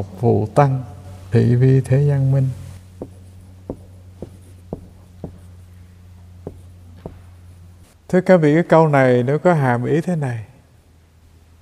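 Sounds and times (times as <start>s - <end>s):
speech: 0.0s - 2.6s, 8.1s - 10.5s
low steady hum: 0.0s - 11.6s
handwriting Chinese characters: 3.0s - 5.6s, 6.5s - 7.2s.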